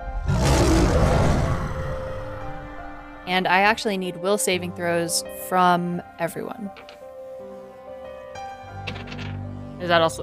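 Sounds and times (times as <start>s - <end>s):
huge creature's deep menacing roar: 0.0s - 2.6s
speech: 3.3s - 7.0s, 9.8s - 10.2s.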